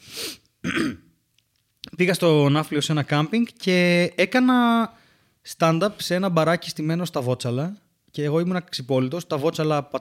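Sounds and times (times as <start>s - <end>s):
person coughing harshly: 0.6s - 1.2s
speech: 0.7s - 1.1s, 1.9s - 10.0s.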